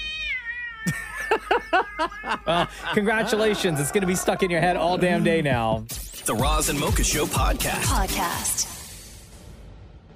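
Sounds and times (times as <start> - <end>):
cat meowing: 0.0 - 2.7
speech: 0.8 - 8.8
laughter: 0.9 - 5.8.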